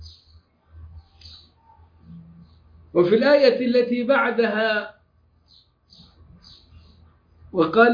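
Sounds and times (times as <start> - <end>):
small birds chirping: 0.0 - 7.9
man reciting loudly: 2.9 - 5.0, 7.5 - 7.9
speech: 3.0 - 5.0, 7.5 - 7.9.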